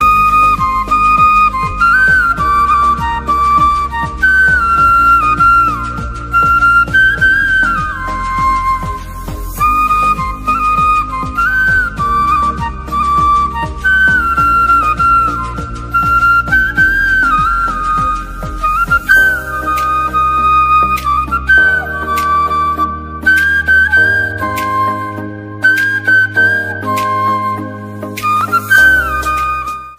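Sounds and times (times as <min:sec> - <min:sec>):
flute instrumental ringtone: 0:00.0 - 0:29.9.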